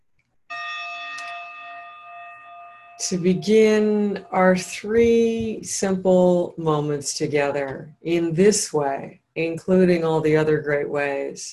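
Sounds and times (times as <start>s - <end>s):
gong struck and ringing: 0.5s - 5.4s
speech: 3.0s - 11.5s.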